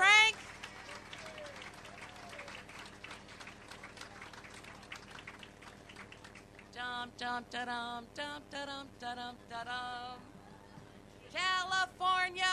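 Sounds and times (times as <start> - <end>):
crowd applauding a prize winner: 0.2 - 6.7
speech: 7.0 - 10.3, 11.4 - 12.5.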